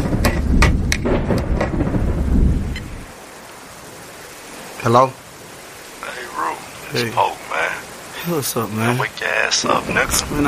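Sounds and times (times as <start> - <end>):
deep continuous rumble of thunder: 0.0 - 3.8
heavy rain pouring outside: 0.0 - 10.4
sharp crackling bursts: 0.0 - 10.4
speech: 4.9 - 5.2, 6.9 - 7.6, 8.2 - 10.4.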